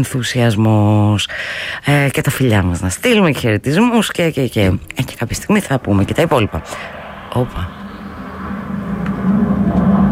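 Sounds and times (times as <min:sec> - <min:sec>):
speech: 0:00.0 - 0:07.8
Phantom fighter jet flying overhead: 0:05.0 - 0:10.1.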